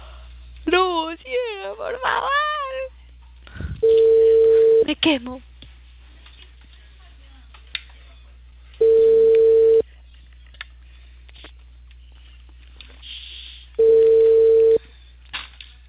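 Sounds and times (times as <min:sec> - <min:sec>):
speech: 0:01.1 - 0:02.5, 0:05.0 - 0:05.5
telephone ringing tone through the line: 0:03.8 - 0:04.8, 0:08.8 - 0:09.8, 0:13.8 - 0:14.8.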